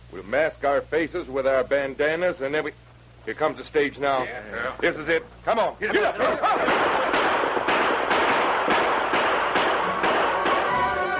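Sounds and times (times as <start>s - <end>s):
speech: 0.2s - 7.0s
laughter: 6.0s - 7.2s
gunshots during a stagecoach holdup: 6.5s - 11.1s.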